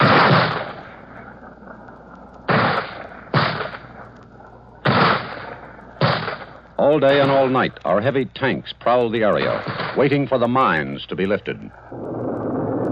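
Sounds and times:
mortar shells being fired in combat: 0:00.0 - 0:01.0, 0:02.5 - 0:04.0, 0:04.8 - 0:07.7, 0:09.4 - 0:10.4
speech: 0:06.8 - 0:12.2.

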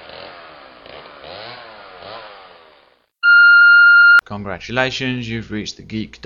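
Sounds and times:
chainsaw revving: 0:00.0 - 0:02.9
steady piercing electronic beep tone: 0:03.2 - 0:04.2
speech: 0:04.3 - 0:06.2.

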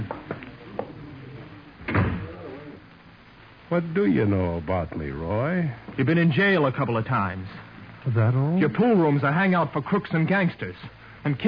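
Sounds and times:
quiet low hum: 0:00.0 - 0:11.4
door swinging shut with a solid thud: 0:01.8 - 0:02.4
speech: 0:03.7 - 0:11.4.

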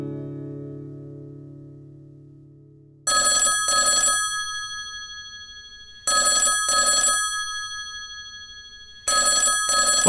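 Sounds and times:
old-style telephone bell ringing with a bright metallic tone: 0:03.1 - 0:10.0.

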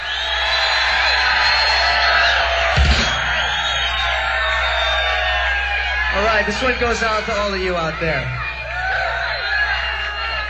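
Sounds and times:
large concert crowd screaming and cheering: 0:00.0 - 0:10.4
speech: 0:06.4 - 0:08.4.

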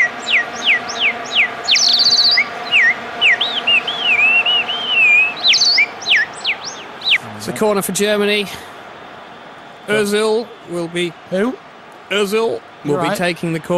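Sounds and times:
bird chirping sound effect with whistled tweets and trills: 0:00.0 - 0:07.6
speech: 0:07.6 - 0:08.7, 0:09.9 - 0:13.7.

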